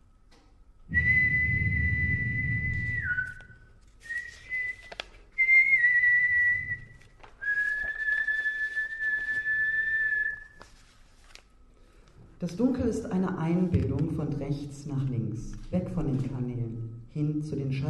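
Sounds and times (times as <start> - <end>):
faint low rumble: 0.9 - 3.5
person whistling tunelessly in sustained notes: 0.9 - 10.6
speech: 12.4 - 17.8.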